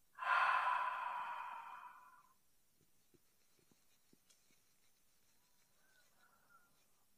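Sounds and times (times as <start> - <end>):
slow breathy exhale through the mouth in a breathing exercise: 0.2 - 2.2.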